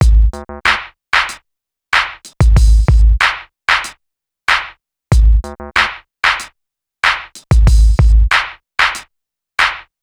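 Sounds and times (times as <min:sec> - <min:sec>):
Indian hip hop drum loop: 0:00.0 - 0:01.4, 0:02.0 - 0:03.9, 0:05.1 - 0:09.0.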